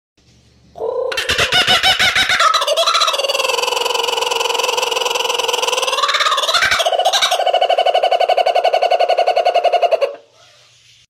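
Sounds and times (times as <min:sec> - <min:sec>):
laughing kookaburra call: 0:00.8 - 0:10.6.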